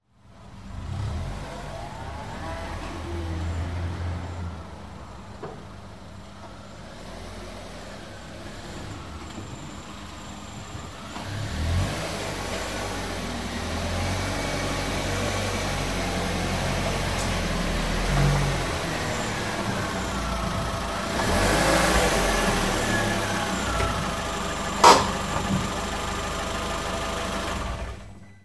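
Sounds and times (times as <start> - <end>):
car sounds: 0.1 - 28.2.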